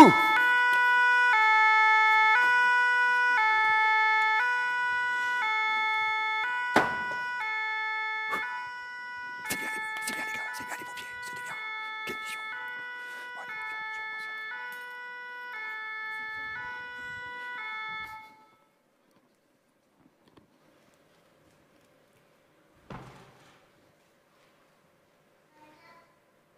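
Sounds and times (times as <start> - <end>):
fire engine siren blaring in two-tone hi-lo pattern: 0.0 - 18.8.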